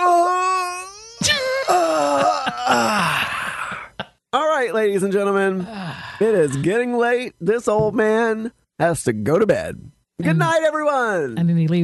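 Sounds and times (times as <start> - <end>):
person fake yawning with groaning moans: 0.0 - 3.9
speech: 4.8 - 11.8.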